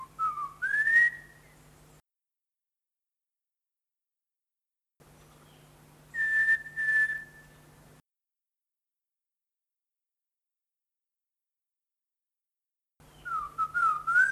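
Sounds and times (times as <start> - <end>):
bird giving clear whistled notes in Papua New Guinea: 0.0 - 1.5, 6.1 - 7.6, 13.1 - 14.3
faint steady hum: 0.0 - 2.0, 5.0 - 8.0, 13.0 - 14.3.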